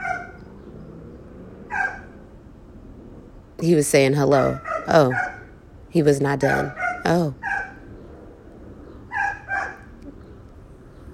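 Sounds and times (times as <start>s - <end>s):
dog barking in short sharp yaps: 0.0s - 0.4s, 1.7s - 2.2s, 4.4s - 5.5s, 6.4s - 7.8s, 9.1s - 9.9s
low hum: 0.0s - 11.1s
speech: 3.6s - 5.3s, 5.9s - 7.4s.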